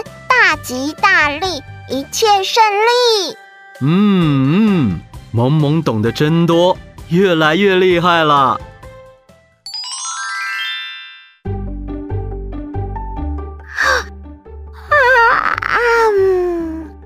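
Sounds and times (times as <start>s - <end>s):
bouncy music: 0.0s - 17.0s
speech: 0.6s - 8.7s
child yawning: 3.8s - 5.0s, 13.7s - 14.1s, 14.8s - 17.0s.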